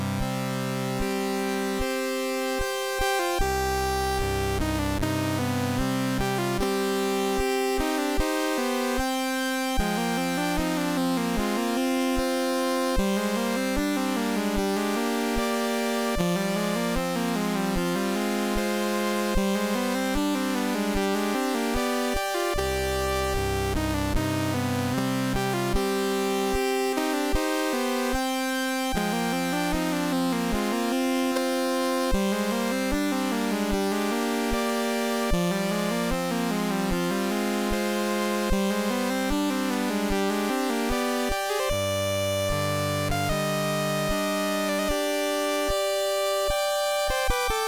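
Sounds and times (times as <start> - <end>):
oriental music in C64 style: 0.1 - 47.6.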